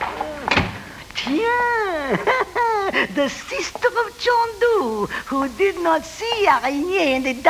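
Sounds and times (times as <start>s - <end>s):
door pushed shut with a solid thud: 0.0s - 1.0s
speech: 1.2s - 7.4s
laughter: 2.0s - 3.7s.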